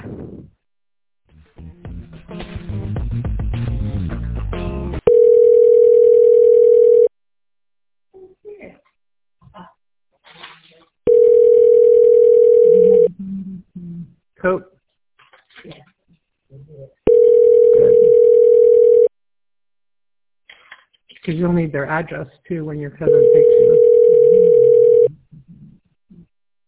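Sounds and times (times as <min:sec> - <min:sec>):
phone call ringback tones ringing toward voicemail: 0:05.1 - 0:07.1, 0:11.1 - 0:13.1, 0:17.1 - 0:19.1, 0:23.1 - 0:25.1
speech: 0:14.4 - 0:14.7, 0:21.4 - 0:24.6.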